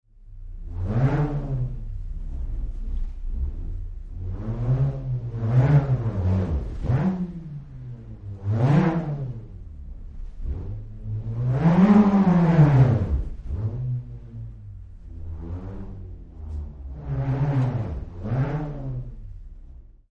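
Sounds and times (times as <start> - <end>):
bullroarer whirring: 0.6 - 19.8.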